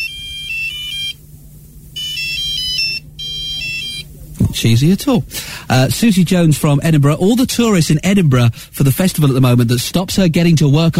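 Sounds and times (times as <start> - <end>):
tinny electronic mobile phone ringtone melody: 0.0 - 1.2, 2.0 - 4.0
speech: 4.6 - 10.9.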